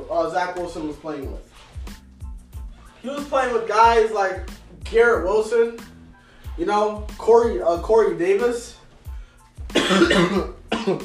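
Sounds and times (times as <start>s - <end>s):
speech: 0.2s - 2.0s, 3.0s - 5.9s, 6.6s - 8.8s, 9.8s - 11.0s
harsh cough: 9.7s - 11.0s.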